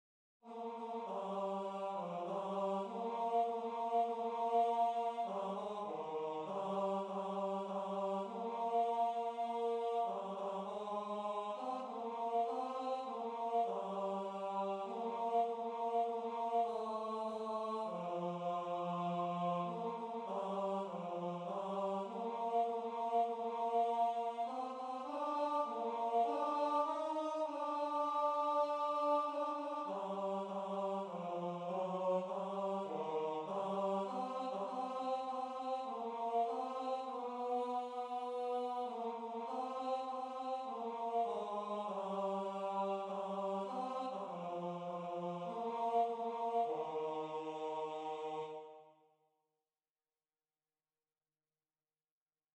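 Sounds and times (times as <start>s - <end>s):
tenor choir singing: 0.4s - 48.9s.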